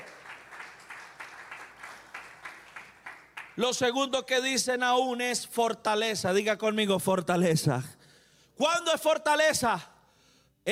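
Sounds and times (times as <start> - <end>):
audience applauding: 0.0 - 3.7
speech: 3.6 - 8.0, 8.6 - 9.9.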